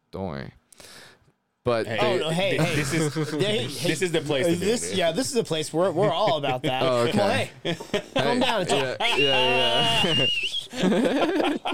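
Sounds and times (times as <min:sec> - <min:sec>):
speech: 0:00.1 - 0:01.0, 0:01.6 - 0:11.6
laughter: 0:02.5 - 0:05.2, 0:05.8 - 0:11.7
brief high person's whistle gliding upward: 0:09.1 - 0:10.7.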